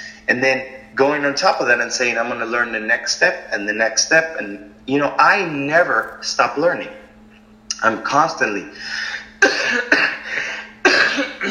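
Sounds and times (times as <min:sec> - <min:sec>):
speech: 0:00.3 - 0:07.0, 0:07.8 - 0:09.2
harsh chesty coughing from a sick man: 0:09.0 - 0:11.4.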